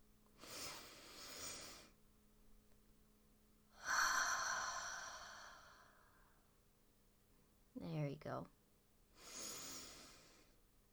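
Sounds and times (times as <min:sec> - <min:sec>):
slow deep breathing in and out: 0:00.4 - 0:02.0, 0:03.7 - 0:06.5, 0:09.1 - 0:10.7
speech: 0:08.2 - 0:08.6.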